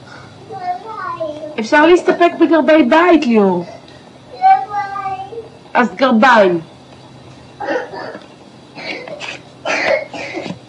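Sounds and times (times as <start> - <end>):
speech: 1.2 - 3.8, 5.8 - 6.7
person coughing roughly: 7.6 - 8.2, 8.8 - 10.6.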